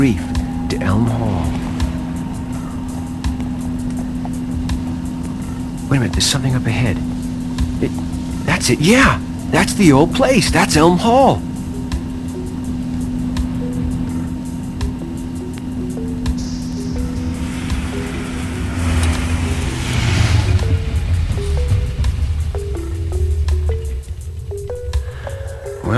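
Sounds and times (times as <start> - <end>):
speech: 0.0 - 1.7, 5.9 - 7.1, 7.8 - 11.5
car engine pulling up and idling: 0.0 - 25.9.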